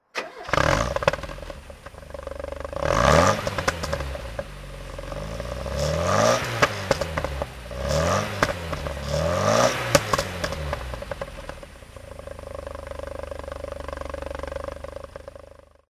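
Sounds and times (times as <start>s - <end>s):
Porsche 924 engine throttle: 0.0s - 15.8s.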